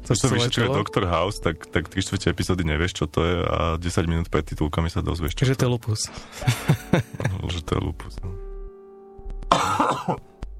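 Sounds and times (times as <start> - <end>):
speech: 0.1 - 8.4, 9.8 - 10.3
laughter: 6.4 - 7.4
harsh raspy cough: 9.5 - 10.2.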